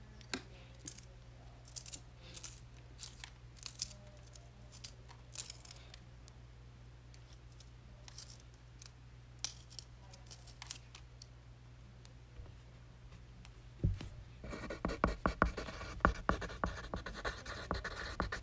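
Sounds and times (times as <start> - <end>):
pencil ticking and scratching: 14.4 - 18.4.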